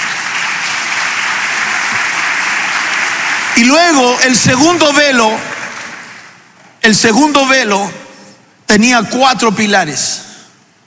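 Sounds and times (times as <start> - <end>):
audience applauding: 0.0 - 6.4
speech: 3.6 - 5.6, 6.8 - 8.0, 8.7 - 10.2.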